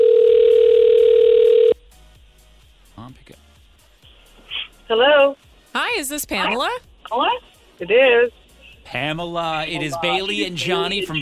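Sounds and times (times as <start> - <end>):
telephone dial tone of an outgoing phone call: 0.0 - 1.8
speech: 4.9 - 11.1.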